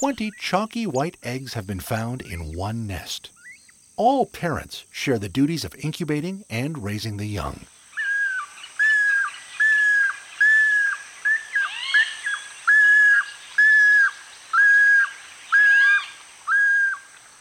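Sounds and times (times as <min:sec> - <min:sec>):
speech: 0:00.0 - 0:03.4, 0:04.0 - 0:07.7
Groove-billed Ani whistled calls: 0:08.0 - 0:17.0.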